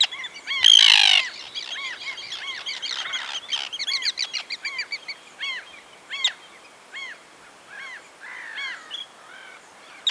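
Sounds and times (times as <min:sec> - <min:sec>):
common tern calling: 0:00.5 - 0:05.6.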